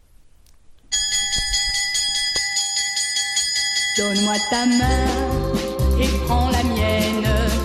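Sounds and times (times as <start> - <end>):
loud electric school bell ringing: 0.9 - 5.9
speech: 4.0 - 7.0.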